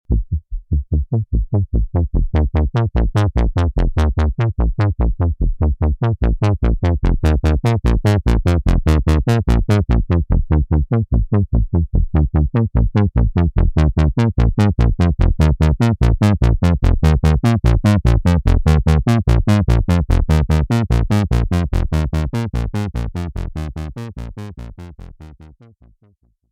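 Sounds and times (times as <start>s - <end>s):
thick wet bass synth: 0.1s - 25.6s.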